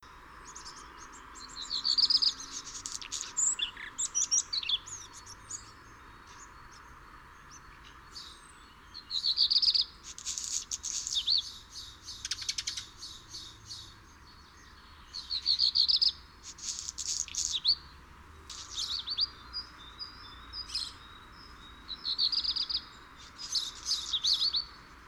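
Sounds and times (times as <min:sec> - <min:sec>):
black redstart: 0:00.0 - 0:25.0.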